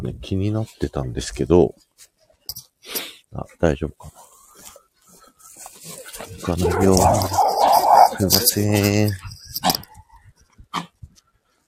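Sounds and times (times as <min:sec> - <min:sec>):
speech: 0:00.0 - 0:01.9, 0:02.9 - 0:04.2, 0:06.3 - 0:07.4, 0:08.1 - 0:09.8
dog growling at a passing dog: 0:05.9 - 0:09.8.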